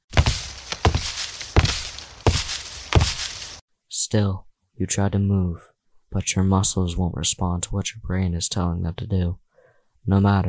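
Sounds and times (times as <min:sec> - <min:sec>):
heavy thudding footsteps of a fur-covered creature charging: 0:00.0 - 0:03.6
speech: 0:04.1 - 0:09.4, 0:10.0 - 0:10.4.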